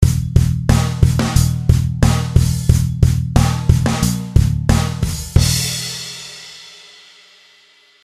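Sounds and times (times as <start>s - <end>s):
bass pluck: 0.0s - 5.8s.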